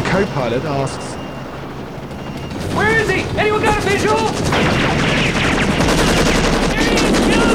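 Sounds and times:
speech: 0.1s - 1.2s, 3.4s - 5.6s
machine-gun fire from a helicopter gunner: 2.9s - 7.5s.

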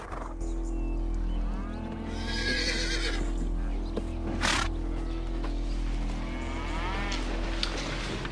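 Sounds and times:
low hum: 0.0s - 8.3s
horse whinnying in a barn: 2.1s - 3.3s.

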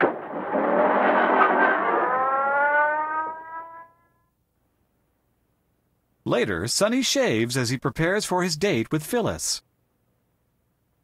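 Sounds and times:
car engine revving and pulling away: 0.3s - 4.0s
speech: 6.3s - 9.7s.

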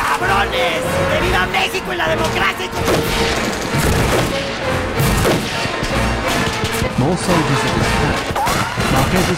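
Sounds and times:
speech: 0.2s - 4.1s, 7.0s - 9.3s
gunfire from a food vendor's cart turned into a gun emplacement at a carnival: 2.7s - 9.3s.

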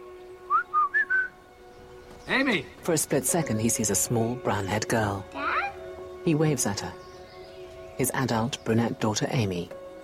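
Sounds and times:
man whistling through pursed lips: 0.5s - 1.3s
speech: 2.3s - 5.4s, 6.2s - 7.1s, 8.0s - 9.8s.

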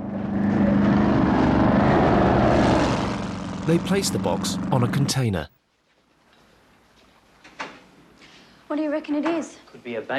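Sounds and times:
speedboat engine roaring as it races towards a marina: 0.0s - 5.2s
speech: 3.7s - 5.6s, 8.7s - 10.1s.

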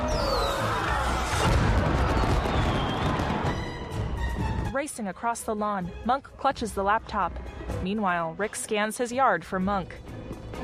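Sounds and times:
whistling fireworks streaks: 0.0s - 4.2s
fireworks bursting in the night sky: 1.1s - 4.3s
speech: 4.9s - 10.1s.

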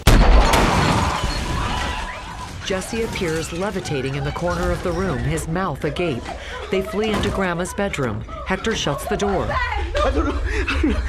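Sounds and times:
explosion blast in a living room: 0.0s - 2.3s
speech: 2.7s - 11.0s
laughter: 4.3s - 11.0s.

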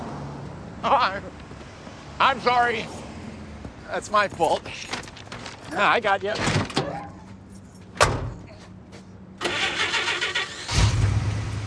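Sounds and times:
speech: 0.8s - 1.6s, 2.2s - 3.0s, 3.9s - 5.0s, 5.7s - 6.6s
pickup truck door thudding shut in a parking lot: 8.0s - 8.4s
pickup truck engine cranking and running: 9.4s - 11.6s.

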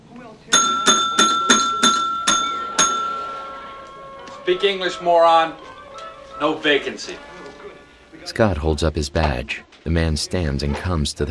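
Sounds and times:
bell on the front desk of a dingy motel lobby ringing: 0.5s - 3.6s
speech: 4.5s - 5.7s, 6.4s - 7.3s, 8.2s - 11.2s.

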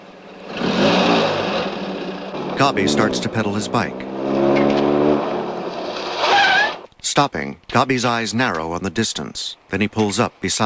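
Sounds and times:
car engine revving as the car drives off: 0.3s - 6.9s
speech: 2.6s - 4.6s, 7.2s - 10.6s.

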